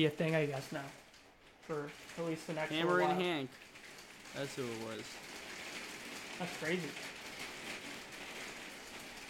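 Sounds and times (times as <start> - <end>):
speech: 0.0 - 1.0, 1.7 - 3.7, 4.3 - 5.3, 6.4 - 7.1
hail hitting a window: 0.0 - 9.2.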